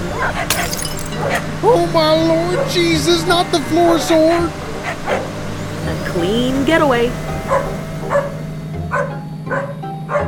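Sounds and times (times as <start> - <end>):
speech: 0.2 - 8.3
small dog barking in short sharp yaps: 7.5 - 10.2.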